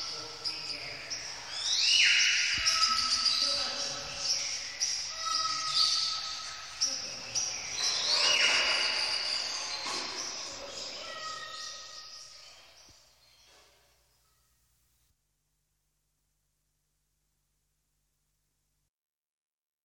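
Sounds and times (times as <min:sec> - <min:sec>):
birds in a dense chorus of high chirps and whistled tones: 0:00.0 - 0:14.4.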